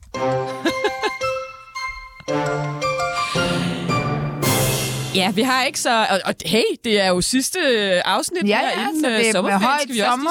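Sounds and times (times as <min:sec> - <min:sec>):
short bright musical jingle with chime-like tones and plucked accents: 0:00.2 - 0:05.7
laughter: 0:00.5 - 0:01.3
speech: 0:05.2 - 0:10.2.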